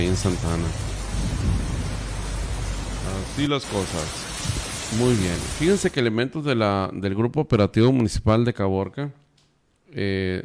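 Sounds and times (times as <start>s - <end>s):
speech: 0.0s - 1.3s, 3.1s - 9.2s, 9.9s - 10.4s
heavy rain: 0.0s - 6.0s
thunder rumbling: 0.0s - 6.0s.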